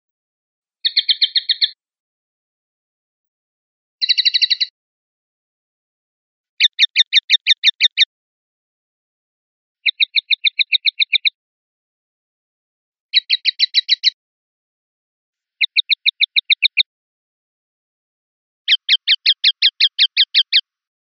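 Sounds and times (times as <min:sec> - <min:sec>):
linnet calling: 0:00.8 - 0:01.8, 0:04.0 - 0:04.7, 0:06.6 - 0:08.1, 0:09.8 - 0:11.4, 0:13.2 - 0:14.2, 0:15.6 - 0:16.9, 0:18.7 - 0:20.6.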